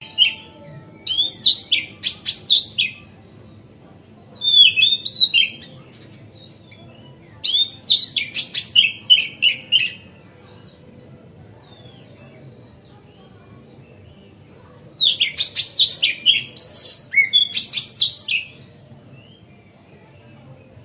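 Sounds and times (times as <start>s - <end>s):
faint low background hum: 0.0s - 20.8s
Oriental magpie-robin song tutor bird singing on a terrace: 1.0s - 3.0s, 4.4s - 5.7s, 7.4s - 10.0s, 15.0s - 18.5s.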